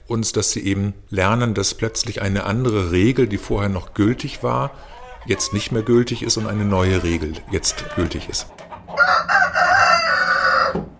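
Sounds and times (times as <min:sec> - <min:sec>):
speech: 0:00.1 - 0:08.7
hens clucking: 0:01.6 - 0:10.8
rooster crowing: 0:04.7 - 0:06.0, 0:09.0 - 0:10.9.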